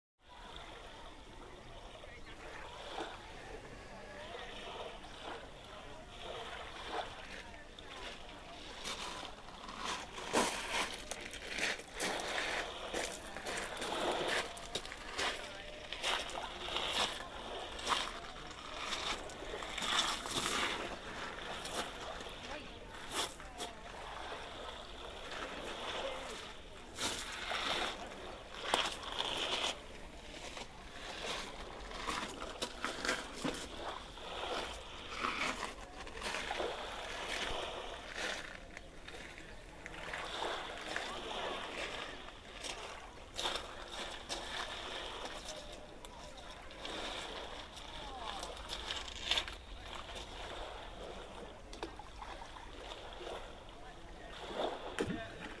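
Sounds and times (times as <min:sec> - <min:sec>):
gentle waves: 0:00.2 - 0:55.5.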